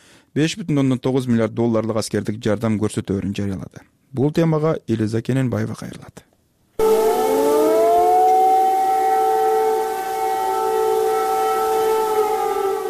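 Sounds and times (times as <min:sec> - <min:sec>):
speech: 0:00.4 - 0:06.3
air raid sirens in Kyiv warning of a missile threat: 0:06.8 - 0:12.8.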